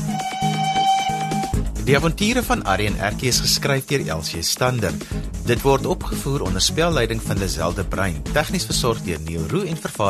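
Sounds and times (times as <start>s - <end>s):
steady high toy train whistle: 0.1s - 1.6s
speech: 1.9s - 10.0s.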